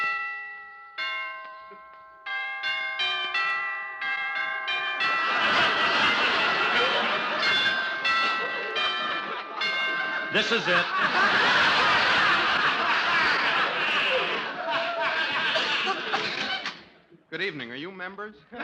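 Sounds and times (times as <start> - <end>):
apartment doorbell chiming: 0.0 - 13.7
laughter: 5.0 - 16.9
speech: 10.4 - 11.6, 17.3 - 18.6.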